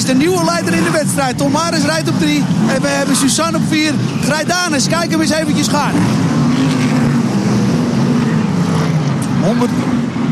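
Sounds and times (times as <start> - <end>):
white racing car engine roaring during a race: 0.0 - 10.3
speech: 0.1 - 6.8, 9.4 - 10.0.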